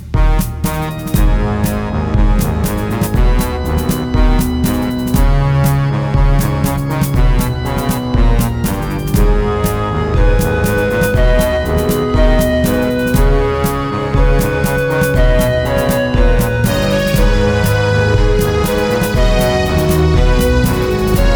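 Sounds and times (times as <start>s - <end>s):
musical accompaniment: 0.1s - 21.3s
melody: 0.7s - 21.3s.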